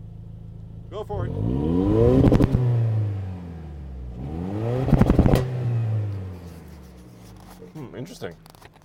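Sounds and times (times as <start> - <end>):
speech: 0.9 - 2.6, 8.0 - 8.6
truck engine revving to about 4,000 RPM: 1.1 - 7.6.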